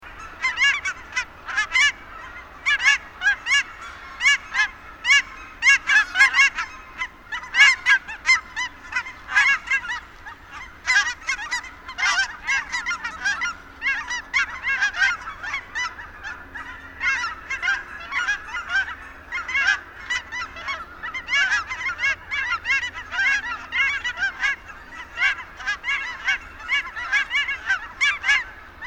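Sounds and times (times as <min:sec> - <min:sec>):
goose cackling: 0:00.0 - 0:28.8.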